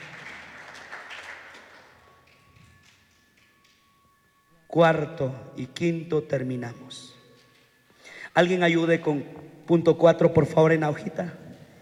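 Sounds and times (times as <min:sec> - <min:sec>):
audience applauding: 0:00.0 - 0:02.5
speech: 0:04.7 - 0:07.1, 0:08.4 - 0:11.4.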